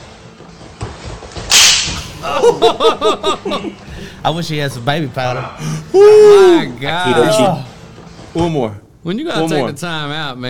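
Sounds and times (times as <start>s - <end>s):
hard sharp slap from a replayed video: 1.5s - 2.2s
laughter: 2.1s - 3.9s
speech: 2.2s - 7.7s, 8.4s - 10.4s
people shouting and whooping excitedly: 5.9s - 7.7s.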